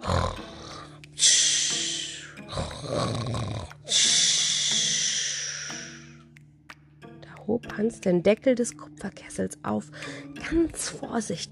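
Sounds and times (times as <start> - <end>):
giant snoring loudly: 0.0 - 6.1
speech: 7.6 - 11.5.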